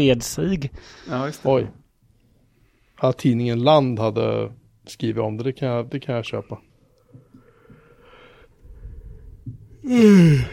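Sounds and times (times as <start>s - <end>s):
speech: 0.0s - 1.8s, 3.0s - 7.2s, 9.5s - 10.5s
drawn-out breathy yawn: 9.8s - 10.5s.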